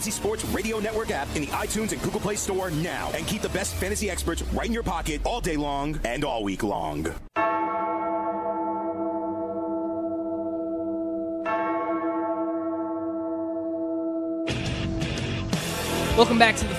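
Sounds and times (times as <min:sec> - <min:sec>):
loud wall of distorted sound: 0:00.0 - 0:07.3
speech: 0:00.0 - 0:07.4, 0:16.2 - 0:16.7
deep bell tolling in a metal song intro: 0:07.4 - 0:15.1.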